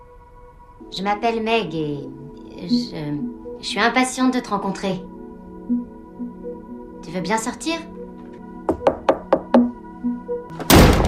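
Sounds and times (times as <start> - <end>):
speech: 0.8 - 5.1, 7.1 - 7.9
sharp knocks on a door: 8.7 - 9.8
door slammed shut: 10.6 - 11.0.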